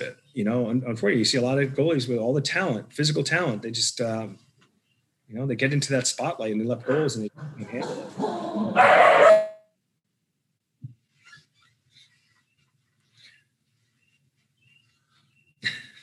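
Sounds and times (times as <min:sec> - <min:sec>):
faint small noises: 0:00.0 - 0:08.9, 0:10.6 - 0:16.0
speech: 0:00.1 - 0:04.5, 0:05.3 - 0:09.3
dog barking: 0:07.9 - 0:09.6.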